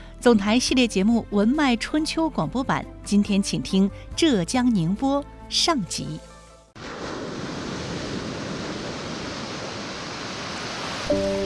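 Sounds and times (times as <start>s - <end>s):
speech: 0.2s - 6.3s
East China Sea tide waves flowing into salt pans: 6.8s - 11.4s.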